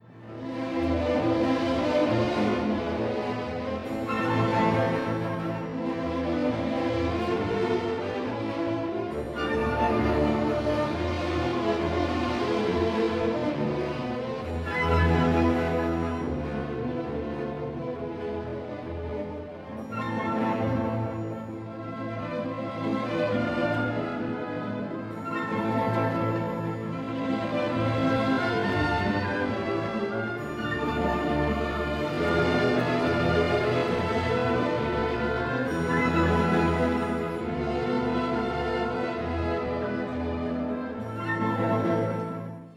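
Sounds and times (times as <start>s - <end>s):
musical accompaniment in A minor: 0.0s - 42.7s.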